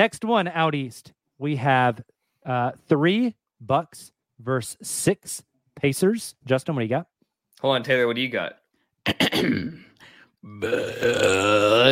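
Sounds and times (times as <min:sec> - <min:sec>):
speech: 0:00.0 - 0:09.8, 0:10.4 - 0:11.9
throaty bursts: 0:09.1 - 0:11.9
belch: 0:10.5 - 0:11.9.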